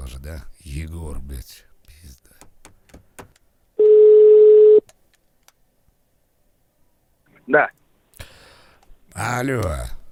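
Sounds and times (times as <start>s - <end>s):
speech: 0.1s - 2.2s, 7.5s - 7.8s, 9.2s - 10.0s
ringing tone of an outgoing telephone call: 3.8s - 4.8s.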